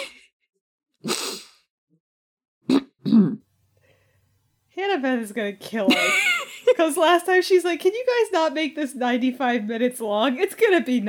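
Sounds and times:
person clearing throat after breathing in saliva: 0:02.7 - 0:03.4
person coughing after breathing in saliva: 0:02.7 - 0:03.4
speech: 0:04.8 - 0:11.0.

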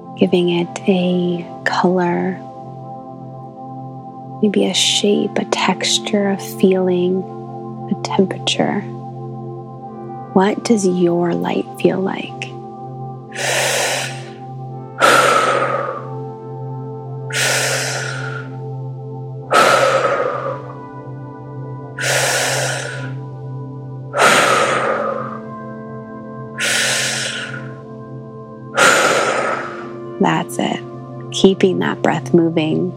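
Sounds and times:
speech: 0:00.2 - 0:02.5, 0:04.4 - 0:07.4, 0:08.0 - 0:09.0, 0:10.4 - 0:12.5, 0:13.4 - 0:13.8, 0:31.6 - 0:32.9
steady low drone: 0:09.1 - 0:32.9
slow deep breaths from a guided breathwork exercise: 0:13.2 - 0:30.2.

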